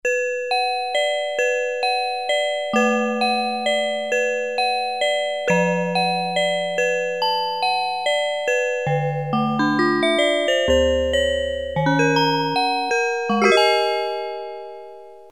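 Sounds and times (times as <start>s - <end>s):
carillon on a Casio CZ-1000 synthesizer: 0.1s - 15.3s.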